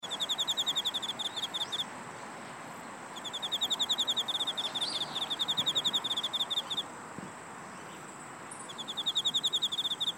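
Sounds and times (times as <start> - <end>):
korogi cricket chirping: 0.0 - 1.9, 2.7 - 10.1.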